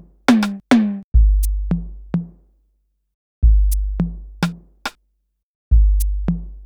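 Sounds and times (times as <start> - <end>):
percussion loop: 0.3 - 1.6, 3.6 - 4.6, 5.9 - 6.3.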